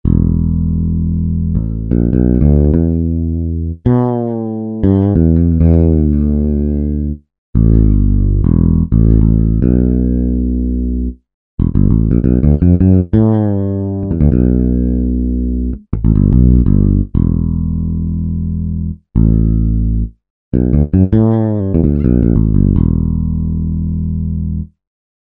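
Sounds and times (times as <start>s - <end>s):
fretless electric bass: 0.0s - 24.8s.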